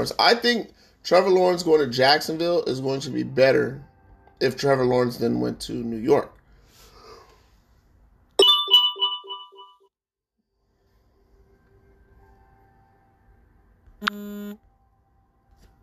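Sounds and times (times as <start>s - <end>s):
speech: 0.0s - 6.4s
phone notification chime with bright tonal pings: 8.4s - 9.9s
short harsh buzzing phone alert tone: 14.0s - 14.6s.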